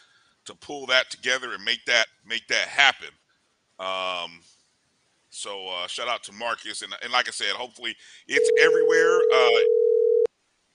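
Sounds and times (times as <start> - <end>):
speech: 0.5 - 3.2, 3.8 - 4.6, 5.3 - 9.8
electronic telephone tone: 8.4 - 10.3.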